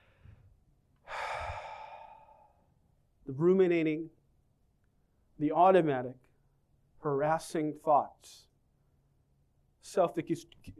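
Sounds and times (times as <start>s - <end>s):
people exhaling together at a church prayer gathering: 1.1s - 2.5s
speech: 3.3s - 4.2s, 5.4s - 6.2s, 7.0s - 8.5s, 9.8s - 10.7s.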